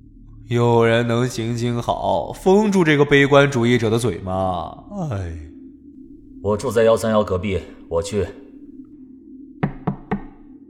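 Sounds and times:
faint low hum: 0.0s - 10.6s
speech: 0.5s - 5.5s, 6.4s - 8.4s
knocking on a door: 9.6s - 10.4s.

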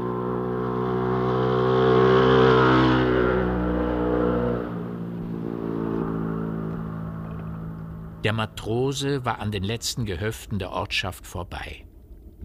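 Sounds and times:
motorcycle engine revving and speeding off: 0.0s - 8.5s
speech: 8.2s - 12.4s.

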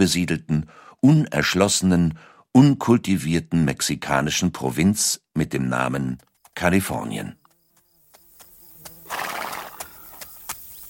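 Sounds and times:
speech: 0.0s - 7.4s
horse hooves clip-clopping with a rider travelling along a valley: 5.8s - 10.8s
horse whinnying: 9.0s - 9.8s.

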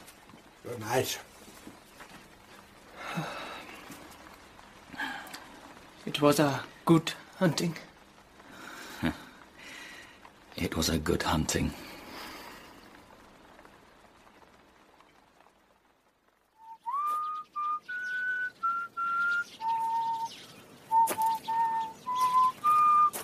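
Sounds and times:
faint hiss: 0.0s - 23.2s
speech: 0.6s - 1.3s, 3.2s - 3.4s, 6.0s - 7.9s, 9.0s - 9.2s, 10.6s - 11.8s
person whistling a call: 16.6s - 23.2s.

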